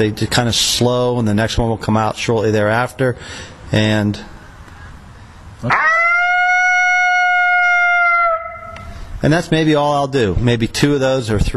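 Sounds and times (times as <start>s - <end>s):
speech: 0.0s - 4.3s, 5.6s - 5.9s, 9.2s - 11.5s
person imitating a lonesome howl: 5.6s - 8.9s.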